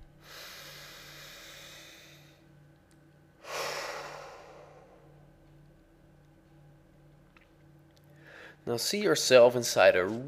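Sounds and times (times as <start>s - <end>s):
slow deep breath: 0.2s - 2.4s, 3.4s - 5.2s, 8.1s - 8.6s
speech: 8.6s - 10.2s.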